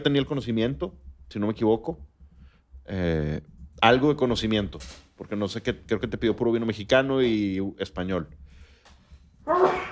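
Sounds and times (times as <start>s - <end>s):
speech: 0.0s - 2.1s, 2.9s - 8.4s, 9.5s - 9.9s
sneeze: 9.5s - 9.9s.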